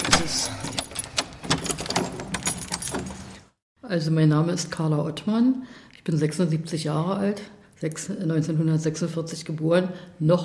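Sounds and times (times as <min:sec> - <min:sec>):
bunch of prison keys jangling and clinking: 0:00.0 - 0:03.4
speech: 0:03.9 - 0:10.4.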